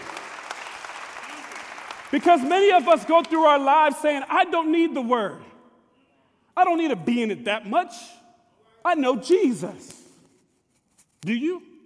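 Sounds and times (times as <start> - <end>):
church audience clapping during a sermon: 0.0 - 3.6
speech: 2.1 - 5.5, 6.6 - 8.2, 8.8 - 10.0, 11.2 - 11.7.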